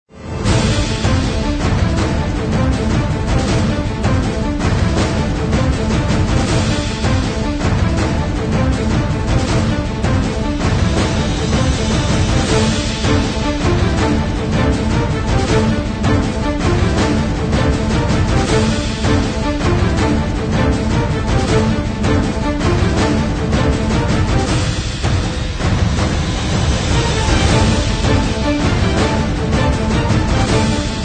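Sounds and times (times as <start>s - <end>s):
orchestra playing tense dramatic action trailer music: 0.1s - 31.0s
trumpet: 0.1s - 31.0s
tense dramatic action trailer drums: 0.2s - 31.0s.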